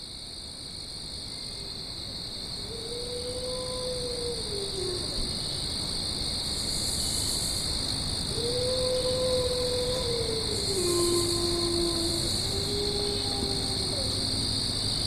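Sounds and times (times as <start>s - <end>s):
high insect chorus: 0.0s - 15.0s
wolf howling: 2.6s - 5.3s, 8.3s - 15.0s.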